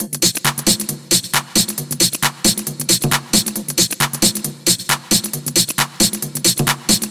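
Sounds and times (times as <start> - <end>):
Latin house music loop: 0.0 - 7.0.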